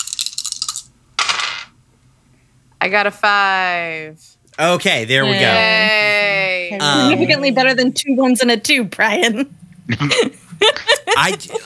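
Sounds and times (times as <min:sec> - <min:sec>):
dice rattling for a game: 0:00.0 - 0:01.7
speech: 0:02.8 - 0:11.6
laughter: 0:04.6 - 0:08.0, 0:09.9 - 0:11.6.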